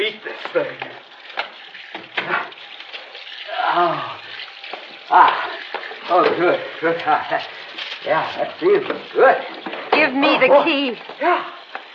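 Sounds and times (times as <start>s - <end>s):
water running from a tap: 0.0s - 11.9s
person groaning and murmuring: 3.5s - 4.2s
speech: 6.1s - 11.6s.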